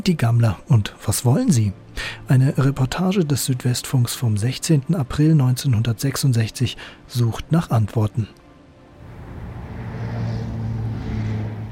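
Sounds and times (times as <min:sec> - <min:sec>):
speech: 0:00.0 - 0:08.4
evening city street road noise of cars and mopeds: 0:08.7 - 0:11.6
car engine droning low and steady: 0:08.9 - 0:11.6.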